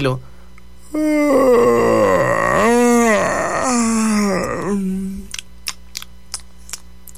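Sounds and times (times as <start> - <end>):
long deep slow exaggerated yawn with moan: 0.9 - 5.3.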